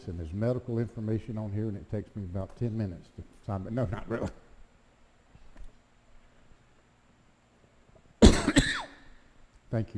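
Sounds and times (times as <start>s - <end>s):
speech: 0.0s - 4.4s, 9.7s - 9.9s
person in a church coughing sharply and raspily: 8.2s - 9.1s.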